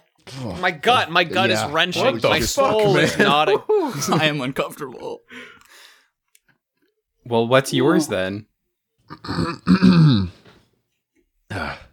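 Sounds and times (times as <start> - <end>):
speech: 0.4 - 5.5, 7.2 - 8.5, 9.1 - 10.4
laughter: 0.9 - 4.6
drawn-out throat clearing: 9.1 - 10.5.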